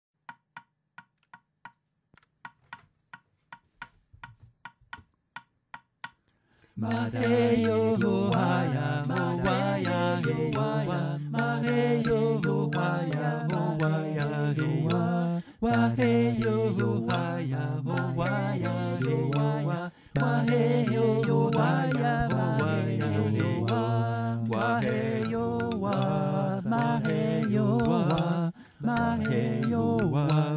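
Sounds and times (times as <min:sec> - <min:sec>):
vocal: 0:06.7 - 0:30.5
xylophone: 0:06.8 - 0:30.5.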